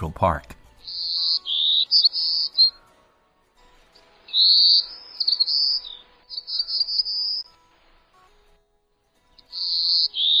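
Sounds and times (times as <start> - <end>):
speech: 0.0 - 0.6
endangered golden-cheeked warbler Setophaga chrysoparia singing high buzzy phrases: 0.0 - 2.9, 4.0 - 7.6, 9.4 - 10.3.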